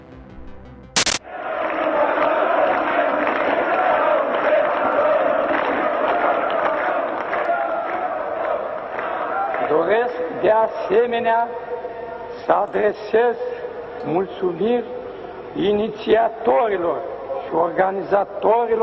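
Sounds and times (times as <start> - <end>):
sharp crack: 1.0 - 1.2
large angry crowd shouting at a mass popular rally in Bucharest: 1.2 - 10.0
speech: 10.4 - 11.7, 12.5 - 15.0, 15.6 - 18.8.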